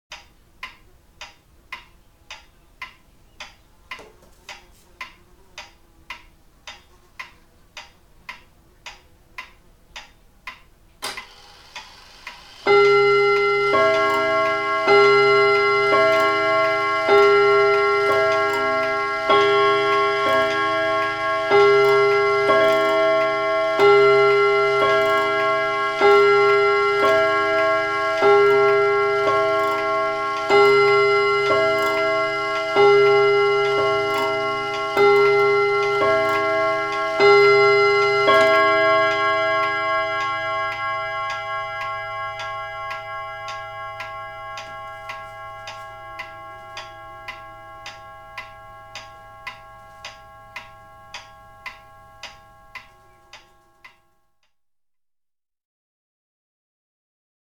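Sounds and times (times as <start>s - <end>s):
old carillon bells: 11.2s - 54.2s.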